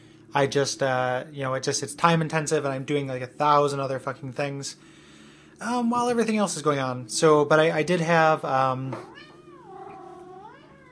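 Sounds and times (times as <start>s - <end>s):
speech: 0.4s - 5.0s, 5.6s - 9.3s
cat meowing: 9.0s - 10.9s.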